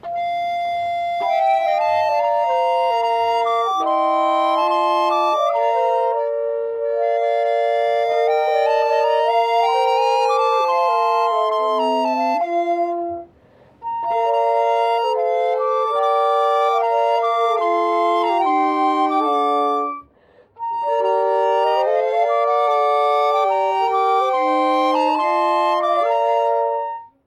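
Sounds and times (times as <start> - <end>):
flutes playing a canticle: 0.0 - 27.2.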